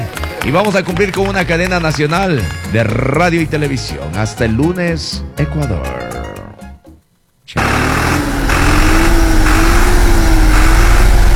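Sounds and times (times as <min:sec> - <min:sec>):
speech: 0:00.4 - 0:06.2
tractor engine starting up and running: 0:07.6 - 0:11.3.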